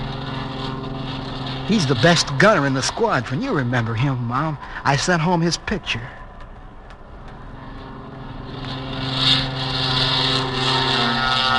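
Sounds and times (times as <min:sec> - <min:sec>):
military aircraft taking off down the runway: 0:00.0 - 0:11.5
speech: 0:01.7 - 0:06.2.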